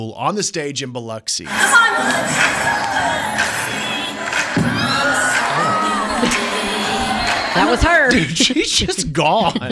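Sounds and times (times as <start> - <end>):
speech: 0.0 - 3.9, 7.6 - 9.7
large concert crowd gasping and shouting at a fall: 1.5 - 8.6
laughter: 4.5 - 9.7.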